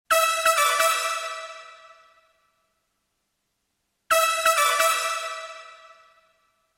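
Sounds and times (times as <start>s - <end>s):
brass with large instrument reverb from vintage digital reverb unit: 0.1s - 2.8s, 4.1s - 6.7s.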